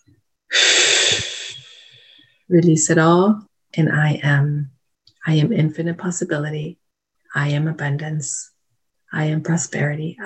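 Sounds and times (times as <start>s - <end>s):
deep breath: 0.5s - 2.5s
speech: 2.5s - 8.5s, 9.1s - 10.2s.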